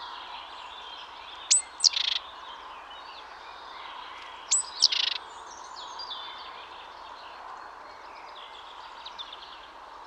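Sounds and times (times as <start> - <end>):
faint steady background hiss: 0.0 - 10.0
great tit Parus major call with buzzy churring rattle: 1.5 - 2.2.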